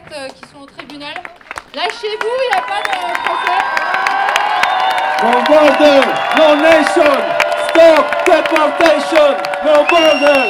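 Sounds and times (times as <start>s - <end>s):
sharp claps from crowd: 0.0s - 10.4s
speech: 0.1s - 4.1s, 5.2s - 10.4s
crowd cheering and shouting in support of defendants at court: 1.8s - 10.4s
whoops from crowd: 2.2s - 10.4s.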